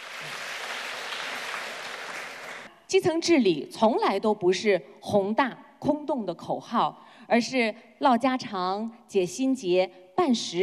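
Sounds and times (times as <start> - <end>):
audience applause at a community governance event: 0.0 - 2.7
speech: 2.9 - 10.6.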